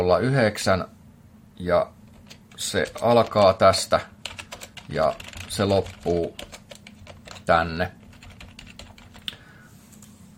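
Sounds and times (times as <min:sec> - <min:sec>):
speech: 0:00.0 - 0:01.0, 0:01.6 - 0:02.0, 0:02.6 - 0:04.1, 0:04.9 - 0:06.5, 0:07.5 - 0:08.0
typing on a computer keyboard while writing program code: 0:02.1 - 0:03.6, 0:04.2 - 0:09.4.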